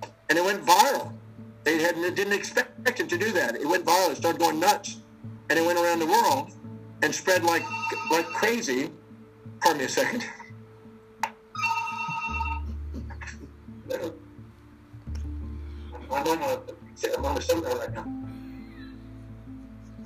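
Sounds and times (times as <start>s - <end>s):
speech: 0.3s - 9.0s, 9.6s - 10.4s, 16.1s - 18.3s
telephone ringing: 7.4s - 8.7s, 11.6s - 12.8s.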